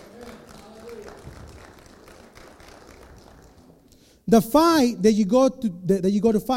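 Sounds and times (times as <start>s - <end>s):
crowd clapping in a large room: 0.0s - 4.1s
speech: 4.3s - 6.5s.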